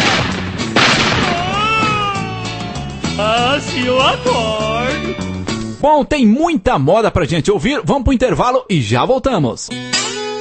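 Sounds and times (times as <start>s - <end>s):
gunshot sound effect: 0.0s - 1.9s
speech: 3.6s - 10.2s.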